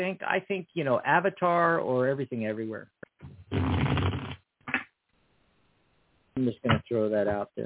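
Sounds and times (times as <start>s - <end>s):
speech: 0.0s - 3.9s, 6.4s - 7.6s
deck of cards being shuffled: 3.2s - 4.8s.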